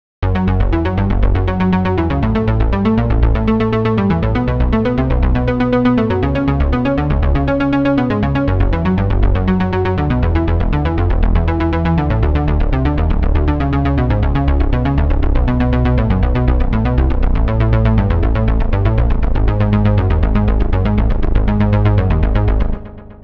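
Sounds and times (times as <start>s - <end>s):
electronic body music sequence: 0.2s - 23.2s.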